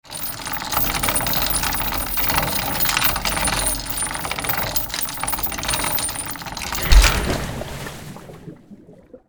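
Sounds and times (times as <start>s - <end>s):
ship anchor release: 0.0s - 7.6s
ship anchor impact on water: 6.7s - 8.5s.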